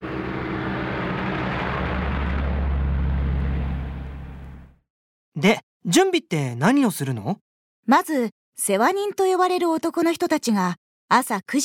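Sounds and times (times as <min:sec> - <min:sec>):
broadband road noise: 0:00.0 - 0:04.8
car passing by: 0:00.0 - 0:04.8
speech: 0:05.4 - 0:11.6.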